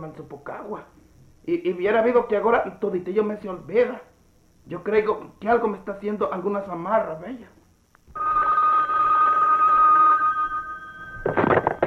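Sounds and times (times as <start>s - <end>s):
speech: 0.0s - 7.6s
telephone ringing with a continuous electronic tone: 8.2s - 11.8s.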